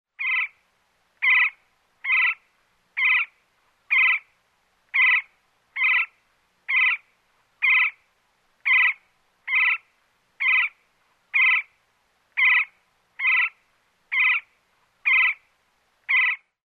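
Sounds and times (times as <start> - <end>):
woodpecker: 0.2 - 0.5, 1.2 - 2.4, 3.0 - 3.3, 3.9 - 4.2, 4.9 - 6.1, 6.7 - 7.0, 7.6 - 8.0, 8.6 - 9.8, 10.4 - 11.7, 12.4 - 15.4, 16.1 - 16.4.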